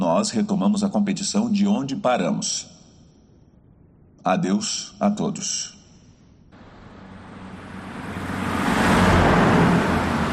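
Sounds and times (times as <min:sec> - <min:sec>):
speech: 0:00.2 - 0:02.8, 0:04.2 - 0:05.8
van slowing down on a deserted street at night: 0:06.6 - 0:10.3.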